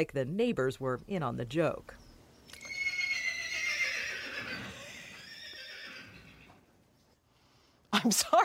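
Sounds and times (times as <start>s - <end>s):
speech: 0.0s - 2.6s, 8.0s - 8.4s
horse neighing: 2.6s - 6.7s.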